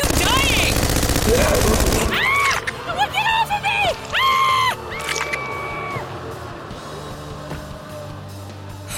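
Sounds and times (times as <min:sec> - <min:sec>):
rapid gunfire aimed at attacking creatures: 0:00.0 - 0:02.3
high wailing and whooping cries: 0:01.2 - 0:06.4.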